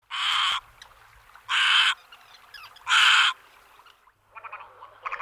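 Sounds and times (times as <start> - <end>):
little egret calling: 0.0 - 0.9, 1.5 - 3.9.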